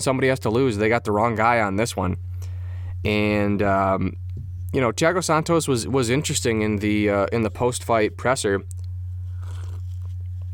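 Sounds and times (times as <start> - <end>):
speech: 0.0 - 2.3, 3.0 - 8.8
steady low hum: 0.0 - 10.5
sip of coffee from a styrofoam cup: 9.3 - 10.2.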